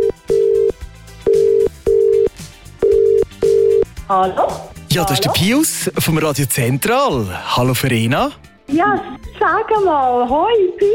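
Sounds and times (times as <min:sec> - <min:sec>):
ringback tone of an outgoing telephone call: 0:00.0 - 0:03.8
speech: 0:04.1 - 0:10.9.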